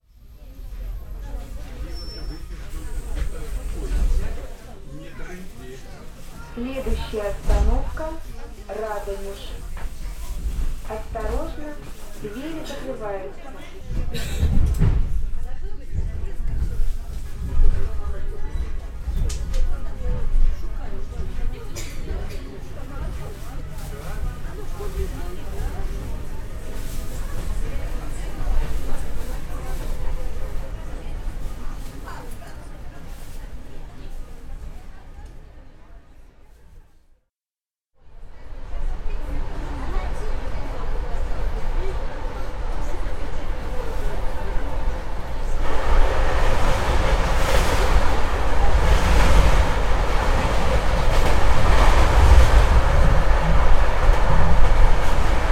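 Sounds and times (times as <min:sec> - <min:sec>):
train in Abramtsevo: 0:00.0 - 0:37.3, 0:38.0 - 0:55.5.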